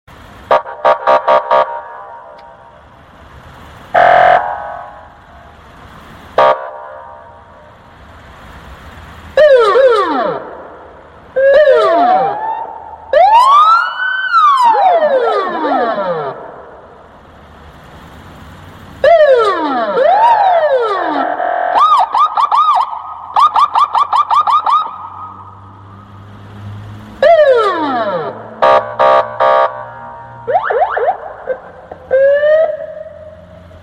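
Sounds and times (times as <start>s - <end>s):
siren: 0.5s - 2.3s, 3.9s - 5.5s, 9.4s - 17.0s, 19.0s - 25.8s, 27.2s - 33.7s.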